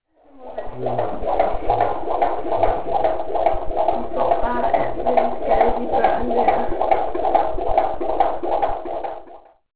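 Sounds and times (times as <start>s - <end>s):
heartbeat: 0.5s - 9.6s.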